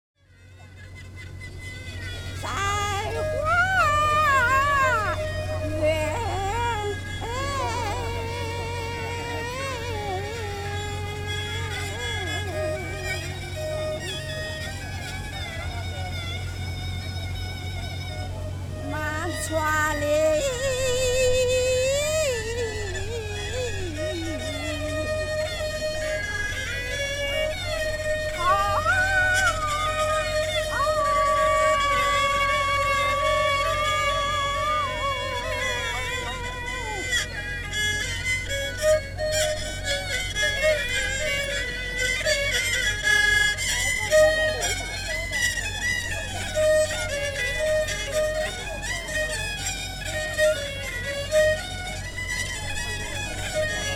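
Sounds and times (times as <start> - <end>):
street Guilin opera performance in China: 0.6 - 53.9.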